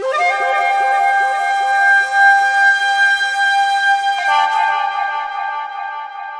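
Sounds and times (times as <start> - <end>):
echoing flute intro blast: 0.0 - 6.3.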